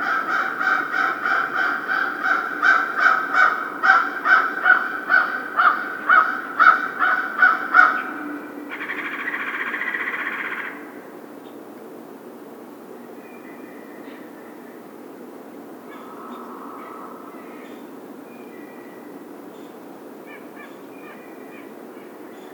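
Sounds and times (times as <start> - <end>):
American crow giving rapid harsh caws and a hoarse drawn-out sound: 0.0 - 10.9, 15.9 - 17.3.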